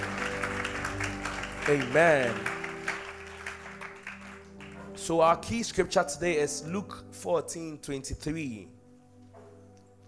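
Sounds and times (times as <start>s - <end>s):
voice rising over applause: 0.0s - 4.8s
congregation clapping: 0.0s - 5.7s
speech: 1.7s - 2.5s, 5.1s - 8.8s.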